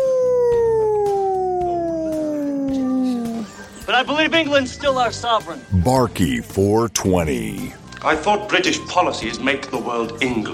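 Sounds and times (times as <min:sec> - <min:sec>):
voice imitating a wolf howl: 0:00.0 - 0:03.5
speech: 0:04.0 - 0:10.5.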